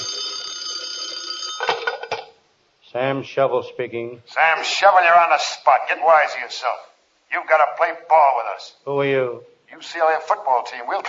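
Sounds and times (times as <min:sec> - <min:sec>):
old-fashioned telephone bell ringing: 0:00.0 - 0:02.4
speech: 0:02.9 - 0:11.0.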